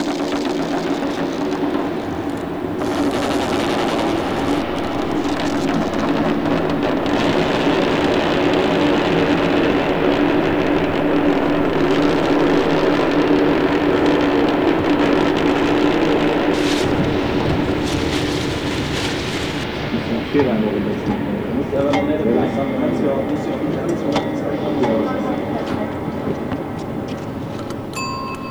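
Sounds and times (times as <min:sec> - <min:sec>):
space sound: 0:00.0 - 0:28.3.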